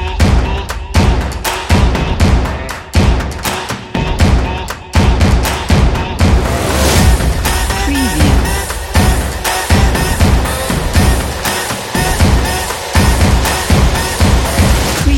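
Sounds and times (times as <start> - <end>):
stomps: 0.2 - 15.0.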